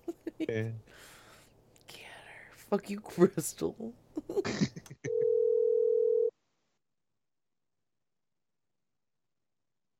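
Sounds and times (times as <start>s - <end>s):
speech: 0.5s - 1.1s, 2.7s - 5.3s
ringback tone of an outgoing phone call: 5.1s - 6.3s.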